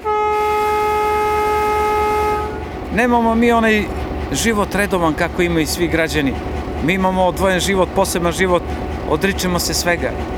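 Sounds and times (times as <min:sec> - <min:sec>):
train horn at Crveni krst railway station in Niš Serbia: 0:00.0 - 0:03.0
speech: 0:03.0 - 0:10.3.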